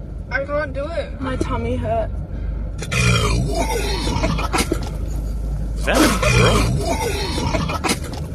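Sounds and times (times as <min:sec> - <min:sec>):
speech: 0:00.3 - 0:02.2, 0:02.8 - 0:05.0, 0:05.8 - 0:08.2
low rough burp: 0:02.8 - 0:04.9, 0:05.8 - 0:08.2.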